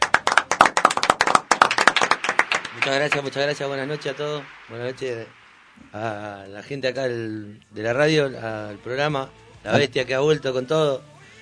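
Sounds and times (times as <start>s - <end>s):
applause in a radio studio: 0.0s - 5.8s
speech: 2.8s - 11.1s.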